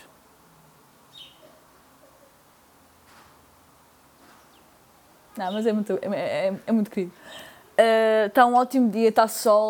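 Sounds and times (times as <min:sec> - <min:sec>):
small birds chirping outdoors on a sunny, slightly breezy day: 0:00.0 - 0:08.0
steady hiss: 0:00.0 - 0:09.6
light rustling: 0:03.0 - 0:03.6, 0:04.2 - 0:04.7
speech: 0:05.4 - 0:09.6.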